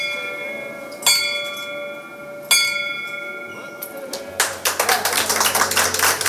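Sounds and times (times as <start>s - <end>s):
hospital bell being rung: 0.0s - 4.1s
lively applause: 4.1s - 6.2s.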